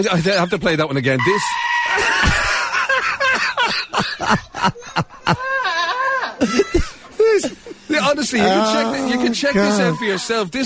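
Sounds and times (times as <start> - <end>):
speech: 0.0 - 2.4, 4.0 - 5.6, 8.0 - 10.6
goat screaming like a human: 1.2 - 2.7, 8.4 - 10.3
laughter: 1.9 - 10.2.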